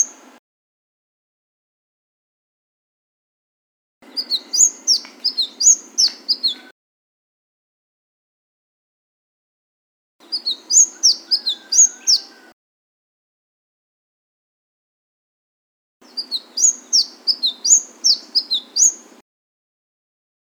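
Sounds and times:
Flame-breasted Sunbird singing fast thin high chirps: 4.0 - 6.7, 10.2 - 12.6, 16.0 - 19.2.

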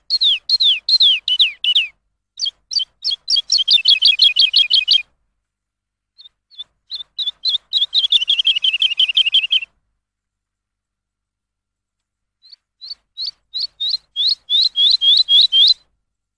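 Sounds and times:
lark singing: 0.0 - 5.1, 6.2 - 9.8, 12.4 - 15.9.

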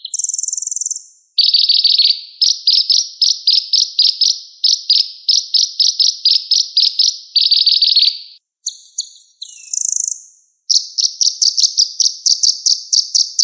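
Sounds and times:
sunbird song used as a lure: 0.0 - 13.4.

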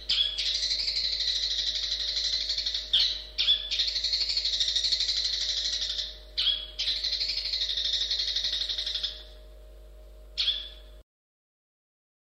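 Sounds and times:
long-tailed shrike grating rattling trill: 0.0 - 9.4
steady low hum: 0.0 - 11.0.

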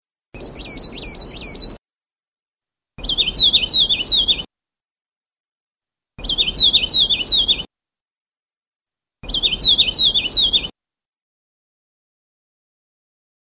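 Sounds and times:
Sulawesi leaf warbler singing: 0.4 - 1.8, 3.0 - 4.5, 6.2 - 7.7, 9.2 - 10.7.

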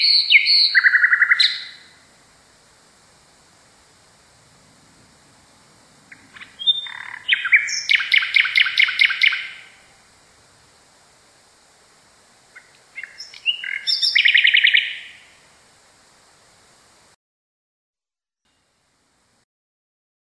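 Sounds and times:
common nightingale singing: 0.0 - 2.1, 6.0 - 10.0, 12.4 - 15.5.

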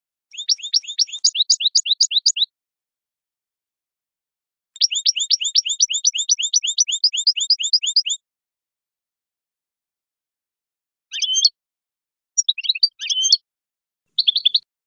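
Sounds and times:
goldfinch song of bright twittering high notes: 0.3 - 2.5, 4.8 - 8.2, 11.1 - 11.6, 12.4 - 13.4, 14.2 - 14.7.

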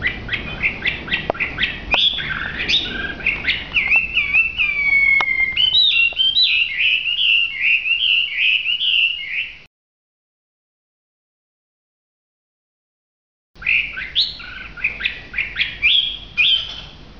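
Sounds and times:
Hwamei singing: 0.0 - 9.7, 13.6 - 17.1.

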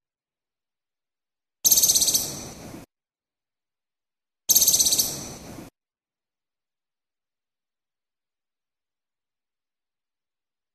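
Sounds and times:
Moluccan woodcock giving a harsh pulsed rattle call in Maluku: 1.7 - 2.5, 4.5 - 5.3.

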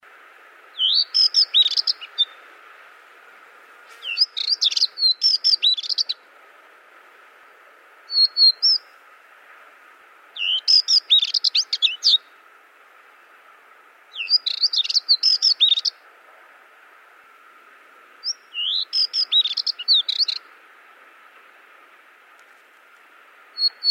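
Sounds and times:
spectacled warbler chirping: 0.7 - 2.5, 3.9 - 6.2, 8.1 - 9.0, 10.3 - 12.4, 14.1 - 16.0, 18.2 - 20.6, 23.5 - 23.8.

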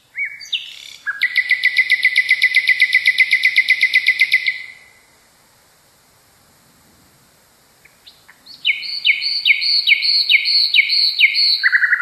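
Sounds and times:
nightingale singing: 0.0 - 5.2, 7.8 - 12.0
speech: 10.0 - 12.0.

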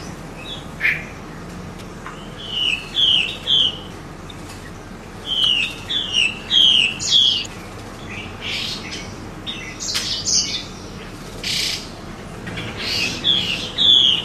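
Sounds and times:
female hwamei whistled song: 2.1 - 3.9, 5.2 - 10.8, 12.8 - 14.2.

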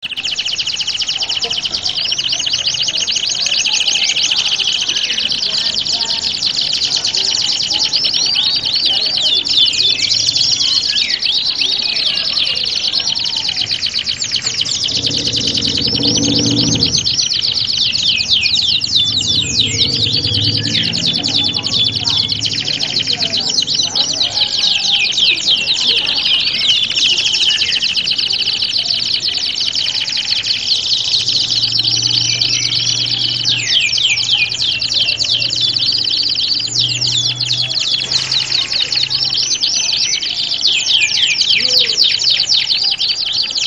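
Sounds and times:
canary singing in a standard canary contest simulation: 0.0 - 43.6.

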